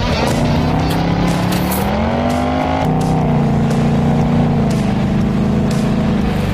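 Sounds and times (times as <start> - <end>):
Ford Mustang GT 5-litre naturally aspirated V8 engine revving: 0.0 - 6.5.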